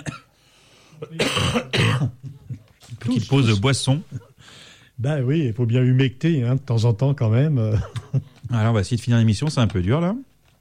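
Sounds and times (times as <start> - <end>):
man coughing: 0.0 - 0.4, 1.0 - 2.7, 4.1 - 4.5
speech: 3.1 - 4.2, 5.0 - 10.3.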